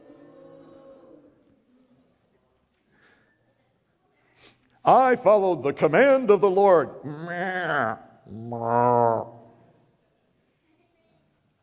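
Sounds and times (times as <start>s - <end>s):
speech: 4.4s - 9.3s
children in a room imitating cows mooing: 7.2s - 9.4s.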